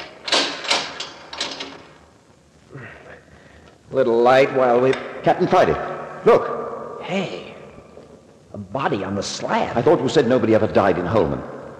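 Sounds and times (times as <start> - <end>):
door rattling and clunking open: 0.0 - 1.8
speech: 3.9 - 7.5, 8.6 - 11.6.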